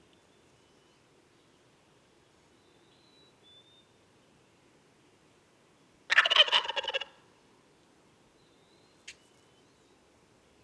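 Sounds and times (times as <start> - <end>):
Wild turkey gobbling: 6.1 - 7.2.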